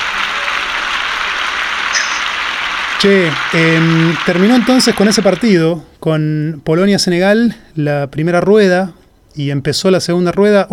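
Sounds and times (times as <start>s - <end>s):
sizable crowd applauding: 0.0s - 5.6s
speech: 3.0s - 10.7s.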